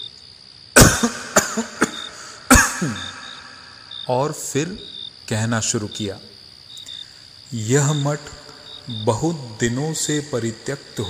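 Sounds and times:
man coughing: 0.8 - 3.9
speech: 1.0 - 1.7, 2.8 - 3.1, 4.1 - 6.3, 7.5 - 11.0.

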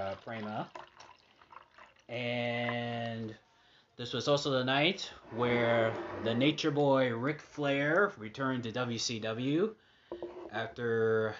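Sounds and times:
cranberry juice being poured into a glass: 0.0 - 3.0
speech: 0.2 - 0.8, 2.1 - 11.3.

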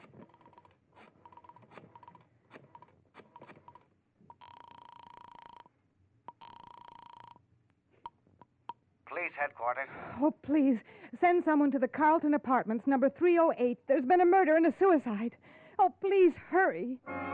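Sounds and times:
steady electronic telephone tones: 4.4 - 5.7
speech: 9.3 - 15.4, 16.0 - 17.2.

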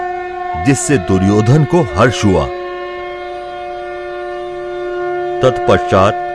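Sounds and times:
conch shell blown loudly: 0.0 - 6.3
speech: 0.6 - 2.6, 5.4 - 6.2.

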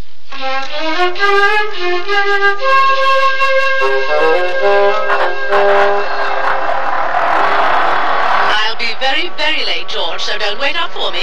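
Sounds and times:
speech: 0.4 - 6.1, 9.0 - 11.2
car engine starting and revving: 5.4 - 11.2.

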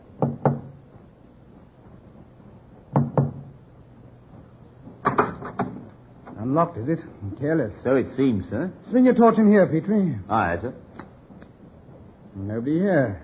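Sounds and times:
quiet knocking on a wooden cabin door aboard a ship: 0.2 - 0.8, 2.9 - 3.6
speech: 6.5 - 10.8, 12.4 - 13.2.

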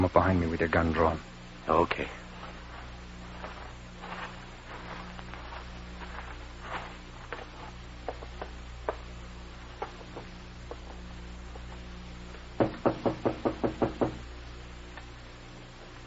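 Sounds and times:
speech: 0.0 - 2.2
low steady hum: 0.0 - 16.0
knocking on a wooden door: 12.6 - 14.2.

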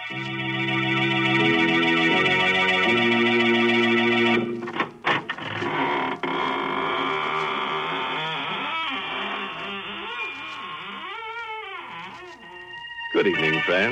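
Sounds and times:
sustained organ-like chord: 0.0 - 4.8, 12.9 - 13.9
speech: 0.1 - 0.5, 13.8 - 13.9
door creaking and squeaking, wavering in pitch: 4.7 - 13.9.

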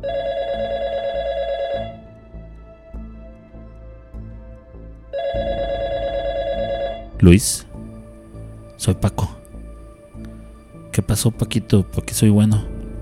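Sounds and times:
telephone ringing with warbling trills: 0.0 - 2.0, 5.2 - 7.1
speech: 7.2 - 7.7, 8.8 - 9.4, 11.0 - 12.7.

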